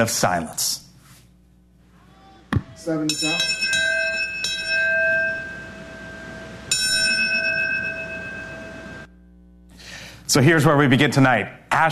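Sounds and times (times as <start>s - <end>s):
speech: 0.0s - 0.8s, 2.8s - 3.9s, 10.3s - 11.9s
memorial bell ringing: 2.9s - 9.1s.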